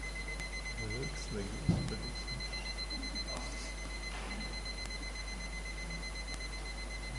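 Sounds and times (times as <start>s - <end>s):
clock alarm ringing as a thin continuous electronic tone: 0.0s - 7.1s
people talking quietly: 0.8s - 6.2s
thump: 1.7s - 2.0s.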